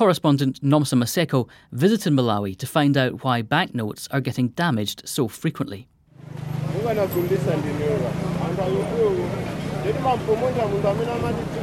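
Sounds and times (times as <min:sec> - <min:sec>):
speech: 0:00.0 - 0:11.6
many overlapping voices chattering at a busy outdoor market in Lilongwe, Malawi: 0:06.7 - 0:11.6.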